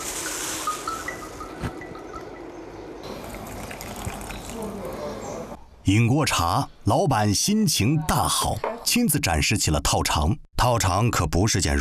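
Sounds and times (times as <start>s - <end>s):
boiling water poured over small teaware to scald it: 3.1s - 4.7s
speech: 5.8s - 11.8s.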